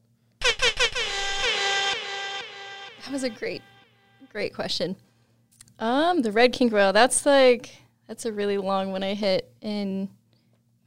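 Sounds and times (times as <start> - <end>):
air horn blasts: 0.4 - 4.4
speech: 3.1 - 5.1, 5.8 - 10.2.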